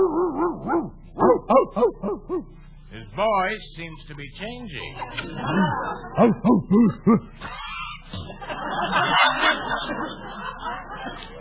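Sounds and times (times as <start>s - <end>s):
dog barking in a kennel: 0.0s - 2.5s
speech: 3.2s - 9.8s
laughter: 4.8s - 11.4s.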